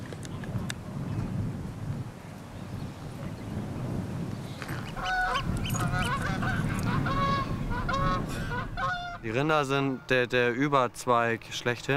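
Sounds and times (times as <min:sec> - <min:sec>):
wind buffeting the microphone outdoors: 0:00.0 - 0:10.0
flock of geese honking on a cattle pasture: 0:04.6 - 0:10.2
speech: 0:09.3 - 0:11.9.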